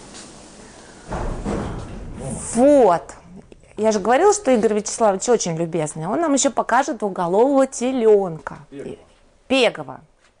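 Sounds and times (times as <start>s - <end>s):
heavy door closing with a thud: 1.0s - 2.8s
speech: 2.4s - 3.2s, 3.8s - 10.3s.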